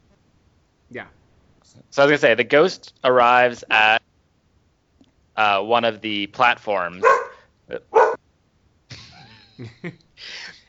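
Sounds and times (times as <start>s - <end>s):
speech: 0.9s - 4.0s, 5.4s - 8.0s, 9.6s - 10.6s
dog yelping and whimpering: 7.0s - 7.4s, 8.0s - 8.2s
dog barking: 7.0s - 8.2s.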